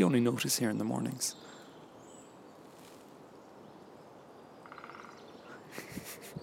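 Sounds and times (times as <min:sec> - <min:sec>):
speech: 0:00.0 - 0:01.6
distant green woodpecker calling: 0:01.2 - 0:02.6, 0:03.2 - 0:05.7.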